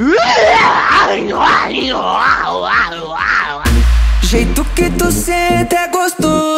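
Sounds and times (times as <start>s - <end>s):
voice imitating a Tasmanian devil with warbling growls, snarls and shrieky yowls: 0.0s - 3.7s
speech: 4.6s - 6.5s.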